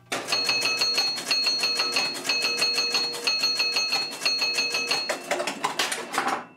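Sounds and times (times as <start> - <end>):
pinball machine mechanical clicking during automated scoring sequence: 0.0 - 6.5
pinball machine ringing chime tones: 0.3 - 5.3.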